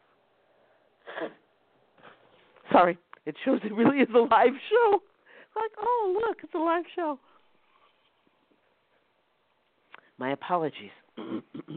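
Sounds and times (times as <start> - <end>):
person blowing nose: 1.0 - 1.4
speech: 1.2 - 1.4, 2.8 - 7.3, 10.2 - 11.7.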